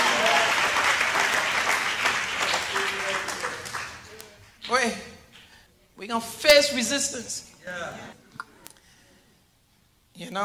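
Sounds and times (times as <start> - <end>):
crowd clapping: 0.0 - 4.9
speech: 6.1 - 8.2, 10.2 - 10.4.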